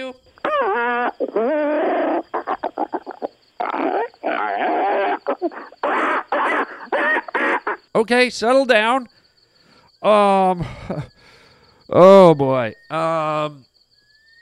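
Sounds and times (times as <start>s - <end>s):
female caller imitating monkey calls: 0.4s - 7.9s
speech: 1.2s - 2.0s, 8.0s - 9.2s, 10.0s - 11.1s, 11.9s - 13.6s.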